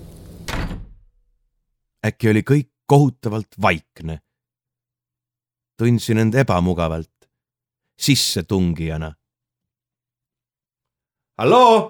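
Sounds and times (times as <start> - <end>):
house door slammed shut into a small entrance hall: 0.0 - 1.2
speech: 2.0 - 4.3, 5.8 - 7.2, 8.0 - 9.2, 11.4 - 11.8.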